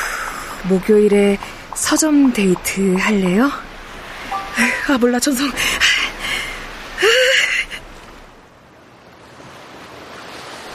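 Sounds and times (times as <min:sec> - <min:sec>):
ocean waves surging: 0:00.0 - 0:10.7
speech: 0:00.6 - 0:03.7, 0:04.6 - 0:05.9
tonal chirp: 0:04.3 - 0:04.8.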